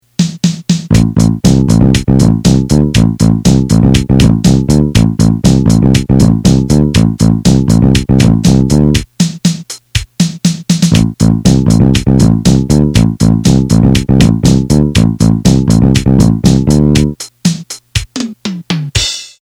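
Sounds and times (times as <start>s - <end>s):
action drums: 0.0s - 19.4s
bass: 0.9s - 9.1s, 10.9s - 17.3s.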